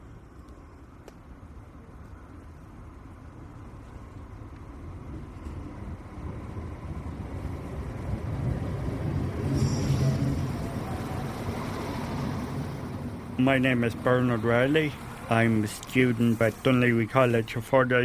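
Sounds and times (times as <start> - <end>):
train rumbling into a station: 0.0 - 18.0
high metallic squeal: 9.4 - 11.4
speech: 13.4 - 18.0.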